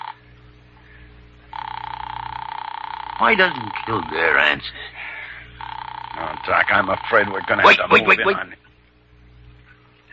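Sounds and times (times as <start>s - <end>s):
telephone with a trilling electric ring: 0.0s - 0.2s, 1.5s - 4.6s, 5.6s - 8.4s
speech: 3.2s - 4.9s, 6.4s - 8.6s.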